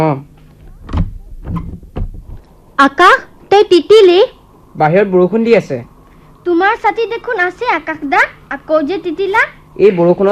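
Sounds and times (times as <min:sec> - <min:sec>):
speech: 0:00.0 - 0:00.3, 0:02.8 - 0:10.2
house door pushed shut: 0:00.6 - 0:02.4.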